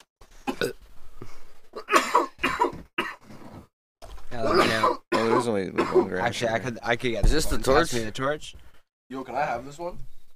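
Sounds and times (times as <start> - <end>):
harsh raspy coughing fit: 1.7 - 3.4, 4.4 - 6.3
speech: 5.4 - 10.1.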